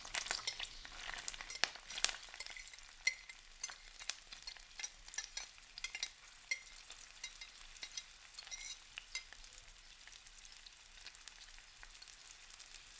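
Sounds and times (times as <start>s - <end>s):
onions sizzling in a pan: 0.0s - 12.9s
wooden spoon stirring onions: 0.1s - 9.2s.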